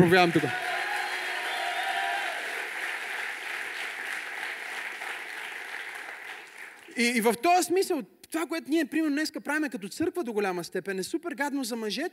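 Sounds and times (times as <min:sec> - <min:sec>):
speech: 0:00.0 - 0:00.6, 0:07.0 - 0:12.1
audience applause in a church: 0:00.0 - 0:07.0.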